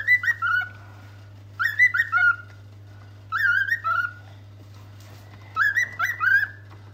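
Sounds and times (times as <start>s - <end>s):
male pet bird whistling and chattering: 0.0s - 0.8s, 1.6s - 2.6s, 3.3s - 4.2s, 5.5s - 6.6s
steady low hum: 0.0s - 6.9s.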